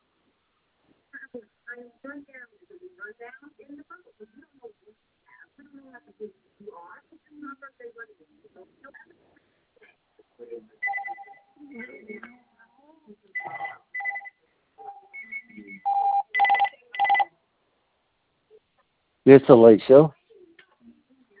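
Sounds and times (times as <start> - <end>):
quiet voices: 1.2 - 10.9, 11.6 - 13.9, 15.2 - 15.9, 19.3 - 21.3
speech: 1.3 - 9.4, 19.2 - 20.2
telephone ringing with electronic tone bursts: 10.8 - 12.2, 13.4 - 17.3.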